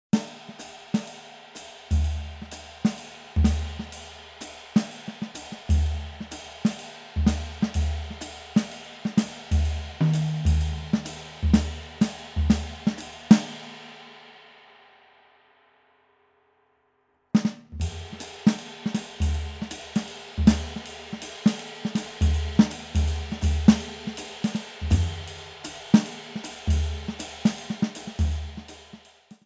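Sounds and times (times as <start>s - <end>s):
swing rhythm: 1.9s - 13.7s, 17.4s - 29.1s.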